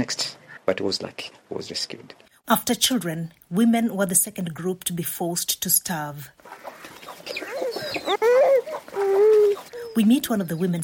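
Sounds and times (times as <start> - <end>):
speech: 0.0 - 6.7, 10.0 - 10.8
faint outdoor noise: 0.0 - 10.8
drawn-out chicken cackle: 6.4 - 10.0
chickens clucking and squawking in a home compound: 6.4 - 10.7.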